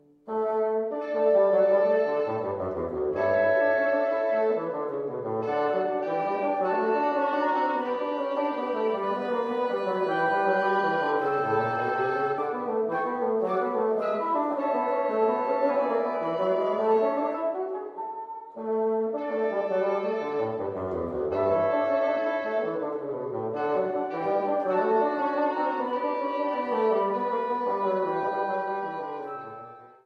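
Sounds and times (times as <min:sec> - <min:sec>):
bassoon playing in a quintet: 0:00.2 - 0:30.0.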